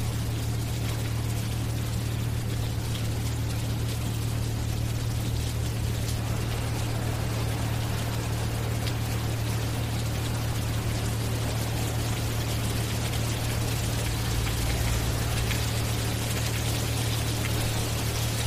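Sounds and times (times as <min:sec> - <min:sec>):
rain on pavement: 0:00.0 - 0:18.4
machinery humming at a plant: 0:03.7 - 0:18.4.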